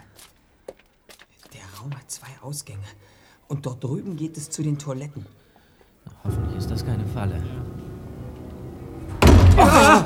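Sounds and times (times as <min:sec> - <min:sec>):
speech: 0:01.8 - 0:05.4, 0:06.2 - 0:07.6
door slamming shut: 0:06.3 - 0:10.0.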